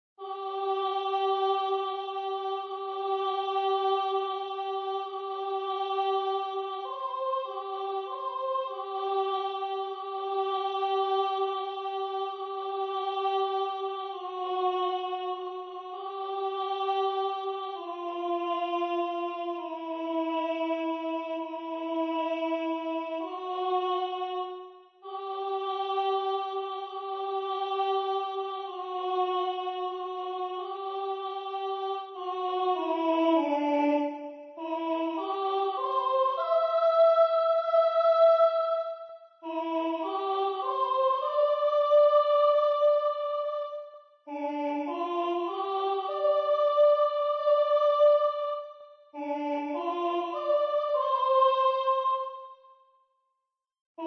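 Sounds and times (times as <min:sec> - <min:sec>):
soprano singing with four-voice choir: 0:00.2 - 0:52.5.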